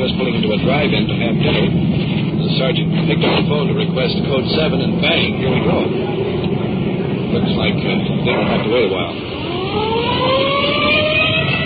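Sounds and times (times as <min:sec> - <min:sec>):
continuous engine-like rumble: 0:00.0 - 0:11.6
speech: 0:00.2 - 0:06.3, 0:07.3 - 0:10.5
police car siren wailing while rolling code 3 to a call: 0:08.2 - 0:11.6.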